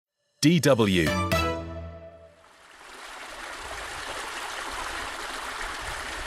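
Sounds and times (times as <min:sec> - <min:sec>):
speech: 0:00.4 - 0:01.3
mountain stream flowing water: 0:02.3 - 0:06.2.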